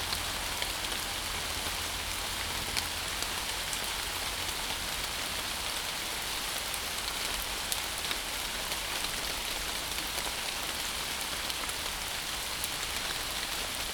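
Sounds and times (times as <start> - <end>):
rain running off leaves: 0.0 - 13.9.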